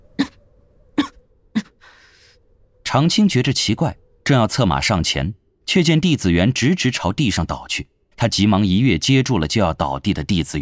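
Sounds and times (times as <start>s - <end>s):
man on horseback coughing quietly: 1.0s - 1.8s
speech: 2.9s - 10.6s.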